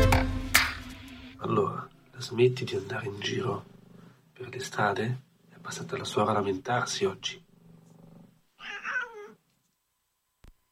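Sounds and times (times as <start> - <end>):
song: 0.0 - 1.4
speech: 1.5 - 3.7, 4.4 - 7.4
cat meowing with a wavering whiny pitch: 8.6 - 9.4.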